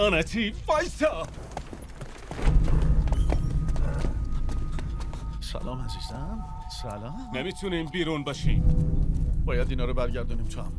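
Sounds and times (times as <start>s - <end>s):
speech: 0.0s - 1.5s, 5.5s - 10.7s
cows' hooves clopping on a hard street: 0.7s - 5.6s
deep low rumble: 2.4s - 6.4s, 7.9s - 10.7s.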